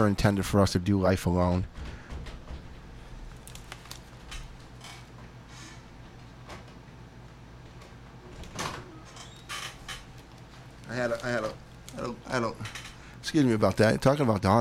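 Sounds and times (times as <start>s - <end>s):
speech: 0.0s - 2.0s, 13.3s - 14.5s
short creaking squeal of a studio door: 8.7s - 10.0s.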